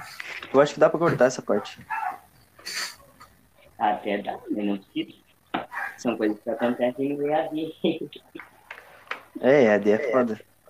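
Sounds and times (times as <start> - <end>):
speech: 0.5 - 2.0, 3.8 - 5.2, 6.0 - 8.5, 9.4 - 10.5
dog barking and yelping: 1.5 - 3.3, 5.6 - 6.9.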